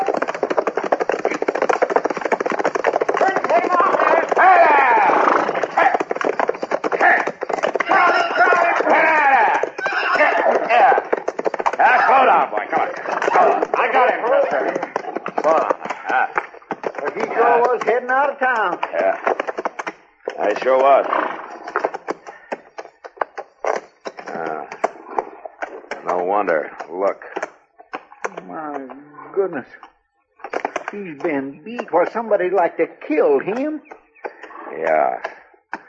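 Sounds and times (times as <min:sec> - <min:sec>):
runaway horse galloping: 0:00.0 - 0:35.8
speech: 0:20.6 - 0:21.4, 0:26.4 - 0:27.3, 0:29.4 - 0:29.9, 0:30.9 - 0:33.9, 0:34.8 - 0:35.3.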